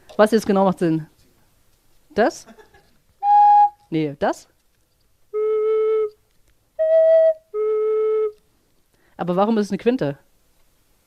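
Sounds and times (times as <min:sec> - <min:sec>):
speech: 0:00.2 - 0:01.1, 0:02.2 - 0:02.6, 0:03.9 - 0:04.5, 0:09.2 - 0:10.2
sustained tones blown on a half-stopped pipe: 0:03.2 - 0:03.8, 0:05.3 - 0:06.2, 0:06.8 - 0:08.4.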